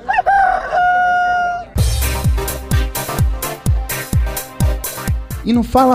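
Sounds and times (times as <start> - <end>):
rooster crowing: 0.0 - 1.8
pounding steady drum beat: 1.8 - 5.9
speech: 5.5 - 5.9.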